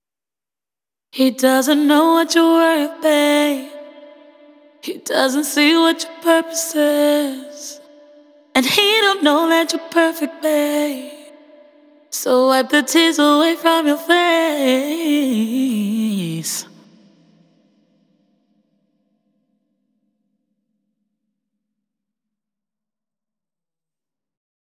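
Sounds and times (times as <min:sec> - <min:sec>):
female vocal: 0:01.2 - 0:17.1.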